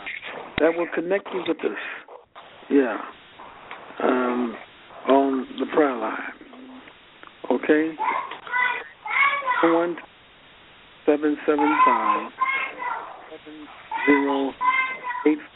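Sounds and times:
speech: 0.6s - 2.0s, 2.7s - 3.2s, 4.0s - 6.3s, 7.5s - 8.3s, 9.6s - 10.1s, 11.1s - 12.4s, 13.4s - 15.5s
children playing and screaming over a phone line: 8.0s - 9.8s, 11.6s - 13.3s, 13.9s - 15.5s.

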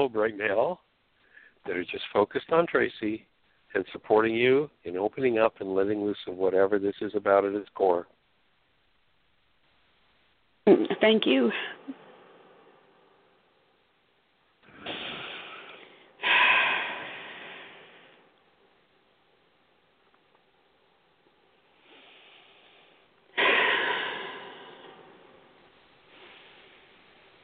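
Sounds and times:
speech: 0.0s - 0.9s, 1.6s - 8.2s, 10.6s - 12.0s
deep rushing breaths during a guided energy release: 1.2s - 1.7s, 14.6s - 19.2s, 21.3s - 27.4s
strong hissing exhalations: 14.6s - 18.3s, 21.6s - 27.4s.

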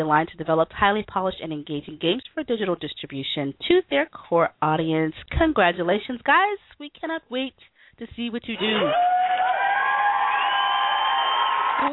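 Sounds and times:
speech: 0.0s - 9.5s
heavily distorted applause sound effect with screechy whine: 8.7s - 11.9s.

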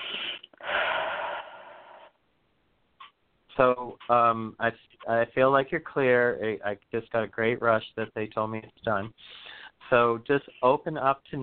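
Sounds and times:
deep breath in through nose and out through mouth during a guided healing session: 0.0s - 2.2s, 9.2s - 9.8s
speech: 3.6s - 11.4s.

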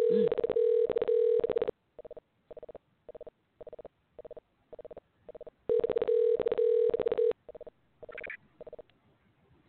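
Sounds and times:
telephone ringback tone: 0.0s - 7.7s.

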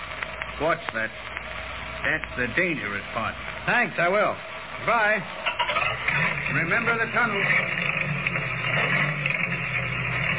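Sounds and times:
speech: 0.6s - 1.4s, 2.0s - 8.0s
old car engine chugging: 4.9s - 10.3s.

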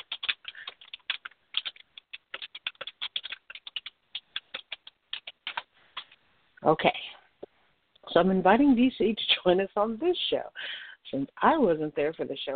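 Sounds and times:
typing a message on a computer keyboard: 0.0s - 6.2s
speech: 6.6s - 7.0s, 8.2s - 12.5s.

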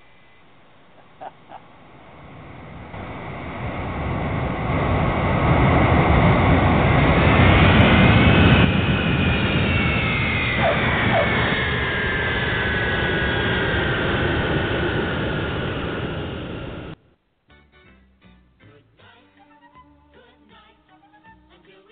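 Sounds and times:
jet airliner engines roaring with whining turbine tones while landing: 0.0s - 17.0s.

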